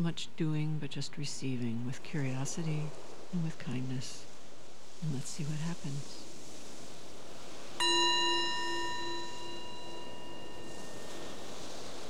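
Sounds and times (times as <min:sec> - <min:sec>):
speech: 0:00.0 - 0:04.3, 0:05.0 - 0:06.3
soft steady hiss: 0:00.0 - 0:12.0
single meditation bell struck once: 0:07.8 - 0:12.0.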